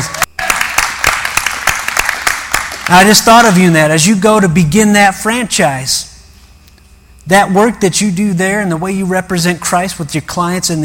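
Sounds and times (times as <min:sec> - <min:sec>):
crowd applauding: 0:00.0 - 0:03.3
speech: 0:02.9 - 0:06.1, 0:07.3 - 0:10.8.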